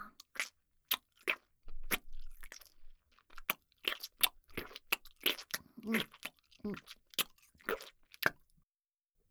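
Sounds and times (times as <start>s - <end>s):
crunchy food being bitten and chewed: 0.2s - 8.5s.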